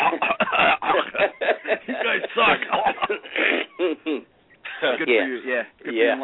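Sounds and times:
person coughing and clearing phlegm from the throat: 0.0 - 1.2, 2.3 - 4.2
laughter: 0.0 - 5.1
speech: 5.0 - 6.2.

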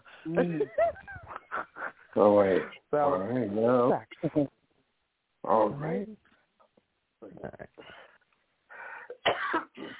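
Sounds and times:
speech: 0.2 - 1.3, 2.1 - 4.6, 5.4 - 6.2, 7.3 - 8.0
person coughing: 9.1 - 9.9.

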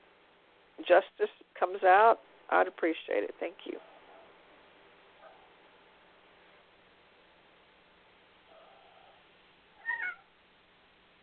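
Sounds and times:
low steady hiss: 0.0 - 11.2
speech: 0.8 - 3.9
cat short chirpy meow: 9.8 - 10.4.

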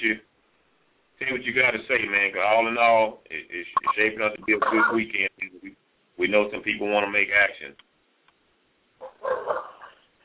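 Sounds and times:
speech: 0.0 - 0.3, 1.3 - 7.9
dog barking and yipping: 9.0 - 10.0.

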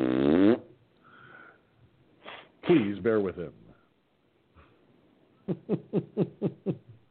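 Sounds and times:
fart sound effect: 0.0 - 0.8
speech: 2.7 - 3.6, 5.5 - 6.8.

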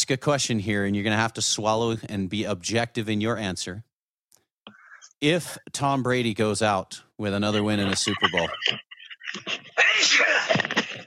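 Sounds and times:
speech: 0.1 - 3.9, 5.2 - 9.6
laughter: 7.4 - 11.0
person sneezing: 9.8 - 10.6.

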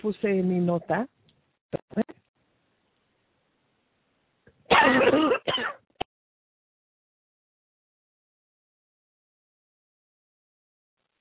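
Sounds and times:
speech: 0.0 - 1.2, 4.7 - 5.8
person coughing: 4.7 - 5.8.

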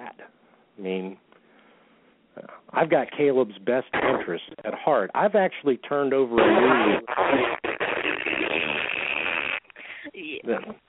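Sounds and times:
speech: 0.1 - 1.3, 2.4 - 7.7, 10.4 - 10.8
buzzy raspberry noise from a noisemaker machine: 3.9 - 4.8, 6.3 - 10.8.

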